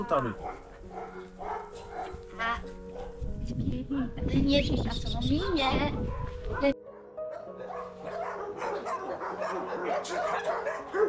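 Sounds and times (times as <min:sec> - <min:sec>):
speech: 0:00.0 - 0:00.6, 0:03.5 - 0:06.7
dogs whimpering: 0:00.0 - 0:02.3, 0:05.3 - 0:11.0
dogs and puppies barking and yipping: 0:00.0 - 0:03.3, 0:05.3 - 0:11.0.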